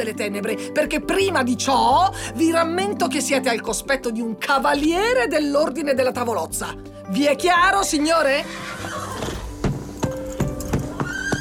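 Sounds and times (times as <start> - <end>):
speech: 0.0 - 9.0
horses whinnying and snorting: 8.5 - 11.3
horse hooves stamping: 8.6 - 11.3.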